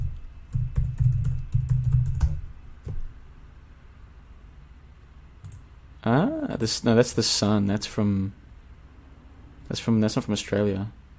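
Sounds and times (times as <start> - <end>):
typing on a computer keyboard: 0.0 - 3.0, 5.4 - 5.6
speech: 6.0 - 8.4, 9.7 - 11.0.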